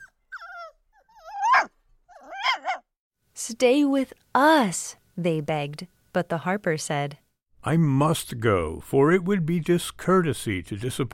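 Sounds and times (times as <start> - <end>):
little brown dog whimpering in high-pitched whines: 0.0 - 2.9
speech: 3.4 - 11.1.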